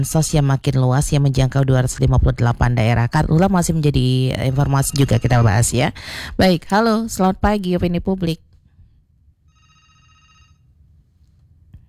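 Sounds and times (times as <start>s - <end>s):
speech: 0.0s - 8.5s
phone call to a radio talk line ringing unanswered: 4.4s - 5.8s, 9.5s - 10.7s.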